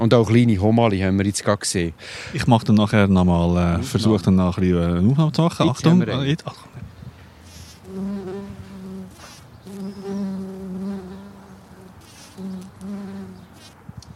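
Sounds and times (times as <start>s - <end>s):
speech: 0.0s - 6.8s
wild bees of several species buzzing around flowering plants: 7.5s - 13.8s.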